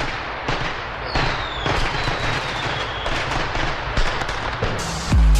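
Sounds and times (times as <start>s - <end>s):
rapid string of firecrackers crackling and popping: 0.0s - 5.2s
whistling rocket streaking overhead: 1.0s - 5.1s.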